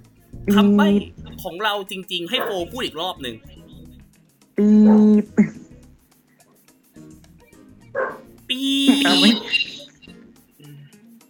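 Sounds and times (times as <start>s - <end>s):
speech: 0.5s - 3.5s, 4.6s - 5.6s, 8.5s - 9.7s
dog barking at home: 2.4s - 2.6s, 8.0s - 8.3s.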